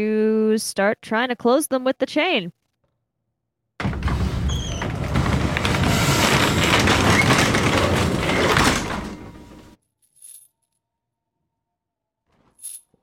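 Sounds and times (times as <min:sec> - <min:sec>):
speech: 0:00.0 - 0:02.6
loud dense rustling and scraping: 0:03.8 - 0:09.8.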